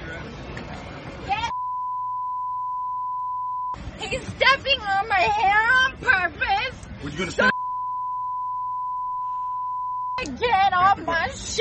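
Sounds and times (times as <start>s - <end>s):
electronic censor bleep tone: 1.5s - 3.8s, 7.5s - 10.3s
speech: 4.0s - 7.5s, 10.3s - 11.5s.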